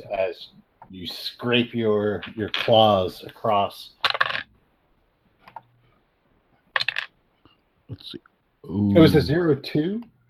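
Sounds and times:
speech: 0.1 - 4.0, 7.9 - 10.1
dice clattering and tumbling across a hard table surface: 2.2 - 2.9, 4.0 - 4.5, 6.7 - 7.2.

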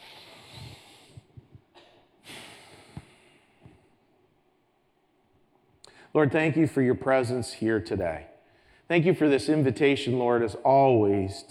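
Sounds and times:
deep breath drawn in at the opening of a prayer: 0.0 - 1.6, 2.2 - 4.0
speech: 6.1 - 8.3, 8.9 - 11.4.

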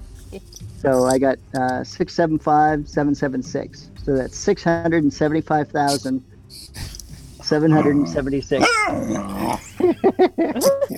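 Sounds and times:
speech: 0.3 - 6.8, 7.5 - 10.9
feisty playful female dog growling, yipping and barking: 7.7 - 9.8
laughter: 9.4 - 10.9.

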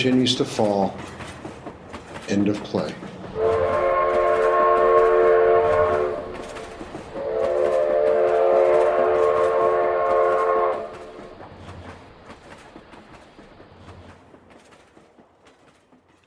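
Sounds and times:
speech: 0.0 - 1.2, 2.3 - 3.1
moving train rumbling: 0.0 - 16.2
train whistle as train approaches stop: 3.4 - 6.4, 7.2 - 11.2.

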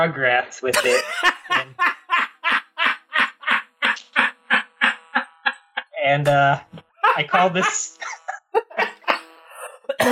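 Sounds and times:
speech: 0.0 - 2.0, 6.1 - 8.0
laughter: 0.7 - 10.0
harsh coughs: 0.8 - 1.7, 9.6 - 10.1.

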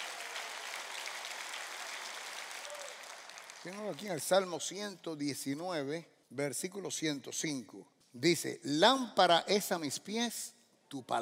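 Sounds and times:
crowd of people applauding: 0.0 - 4.5
speech: 3.6 - 11.1.

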